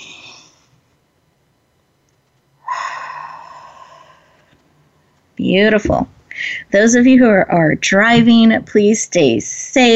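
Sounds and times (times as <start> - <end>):
deep breath taken during a guided relaxation exercise: 2.6 - 4.5
speech: 5.4 - 9.9.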